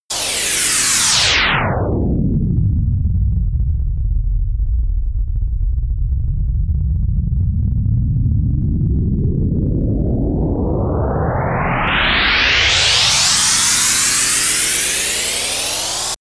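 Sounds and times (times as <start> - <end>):
noise riser spinning down: 0.1 - 16.1.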